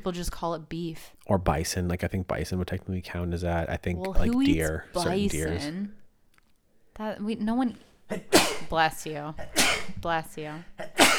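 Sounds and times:
speech: 0.0s - 6.0s, 7.0s - 11.1s
person sneezing: 8.1s - 8.7s, 9.4s - 10.0s, 10.8s - 11.1s.

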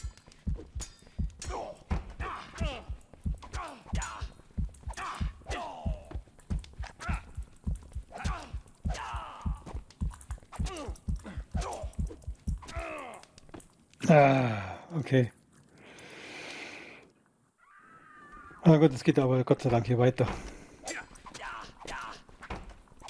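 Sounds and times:
loud fast heartbeat sound effect: 0.4s - 12.9s
speech: 14.1s - 15.4s, 18.7s - 20.5s.

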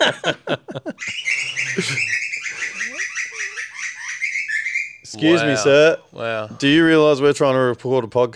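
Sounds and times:
speech: 0.0s - 2.1s, 5.2s - 8.3s
laughter: 0.0s - 3.5s
bird chirping and twittering inside a shed: 1.0s - 5.6s.

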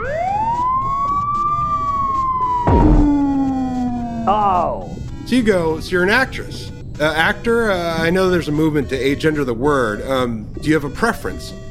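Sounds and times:
emergency vehicle siren wailing: 0.0s - 5.1s
speech: 4.3s - 11.6s.

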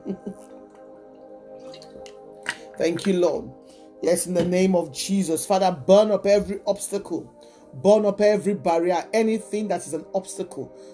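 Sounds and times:
wet sipping of water: 1.6s - 2.8s
speech: 2.8s - 10.9s.

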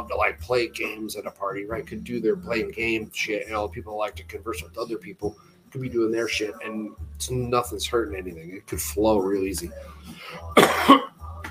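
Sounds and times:
speech: 0.0s - 11.1s
harsh throaty double cough: 10.6s - 11.1s.

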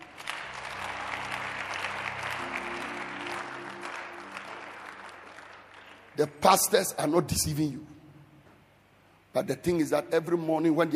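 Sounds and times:
church audience clapping: 0.0s - 7.0s
organ or keyboard chords: 0.0s - 9.0s
speech: 6.2s - 7.9s, 9.4s - 10.9s.

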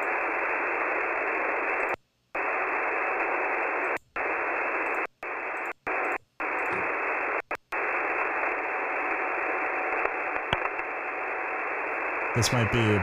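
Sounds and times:
crackly radio static from a recorded radio broadcast: 0.0s - 13.0s
speech: 12.4s - 13.0s.

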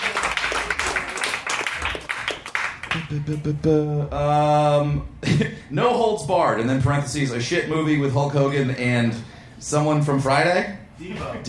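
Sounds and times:
crowd clapping and applauding: 0.0s - 3.4s
speech: 3.0s - 11.4s.

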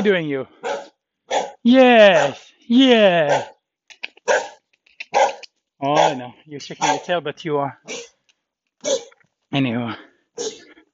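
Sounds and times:
speech: 0.0s - 0.8s, 1.6s - 3.6s, 4.3s - 4.5s, 5.8s - 8.1s, 8.8s - 10.6s
black and white dog yipping softly: 0.6s - 1.6s, 4.2s - 6.2s, 6.8s - 7.1s, 7.9s - 8.2s, 8.8s - 9.2s, 10.4s - 10.6s
black and white dog barking: 0.6s - 2.4s, 3.3s - 3.6s, 4.2s - 7.1s, 7.9s - 8.1s, 8.8s - 9.2s, 10.4s - 10.7s.

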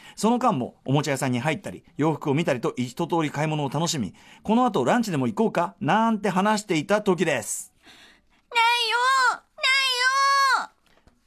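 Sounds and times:
speech: 0.2s - 9.4s
two-year-old girl wailing in a stroller in a shopping mall: 8.6s - 10.7s.

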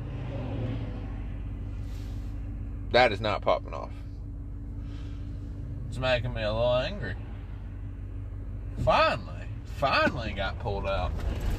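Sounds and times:
road traffic passing a driveway: 0.0s - 11.5s
speech: 2.9s - 4.0s, 5.9s - 7.2s, 8.8s - 11.5s.

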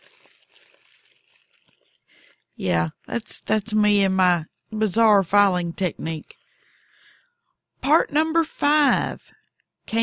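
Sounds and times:
plastic bags crinkling and rustling: 0.0s - 2.6s
speech: 2.6s - 6.4s, 7.8s - 10.0s.

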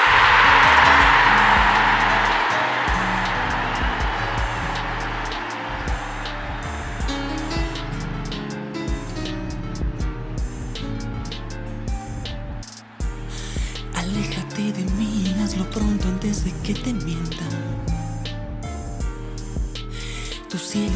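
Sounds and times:
hissing wave-like wash: 0.0s - 7.8s
rhythmic instrumental backing of a breakup song with a steady beat: 0.0s - 20.9s.

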